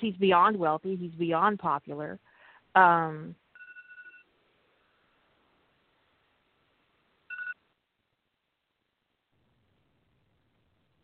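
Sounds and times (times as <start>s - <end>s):
speech: 0.0s - 3.4s
phone alarm two-tone chiming: 3.6s - 4.3s, 7.3s - 7.6s.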